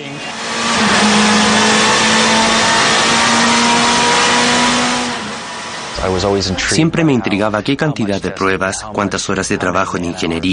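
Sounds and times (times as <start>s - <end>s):
motorcycle engine revving during test: 0.0s - 6.4s
speech: 6.2s - 10.5s.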